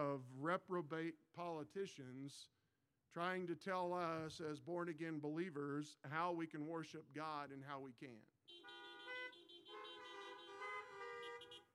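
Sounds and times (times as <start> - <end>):
speech: 0.0 - 8.8
several car horns honking: 8.5 - 11.7.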